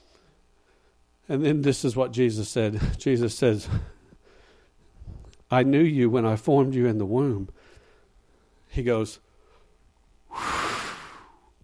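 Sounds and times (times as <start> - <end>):
speech: 1.3 - 4.0, 5.5 - 7.6, 8.7 - 9.2
person exhaling forcefully imitating a divine breath: 10.3 - 11.5.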